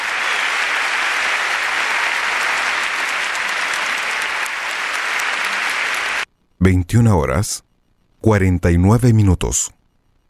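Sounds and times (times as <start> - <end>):
sustained applause from a large audience: 0.0 - 6.3
speech: 6.6 - 9.8.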